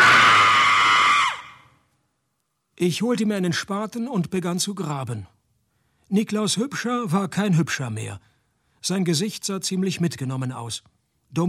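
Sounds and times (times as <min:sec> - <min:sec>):
woman screaming: 0:00.0 - 0:01.6
speech: 0:02.8 - 0:05.4, 0:06.1 - 0:11.4.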